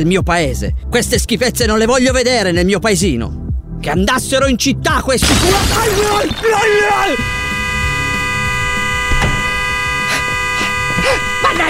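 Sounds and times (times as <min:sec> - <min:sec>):
speech: 0:00.0 - 0:07.4
car horn set off by a person's head resting on it: 0:05.2 - 0:11.6.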